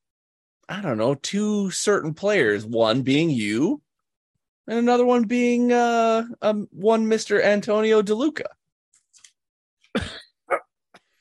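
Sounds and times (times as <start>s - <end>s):
speech: 0.7s - 3.8s, 4.7s - 8.6s, 10.0s - 10.2s
man coughing harshly: 9.9s - 10.7s.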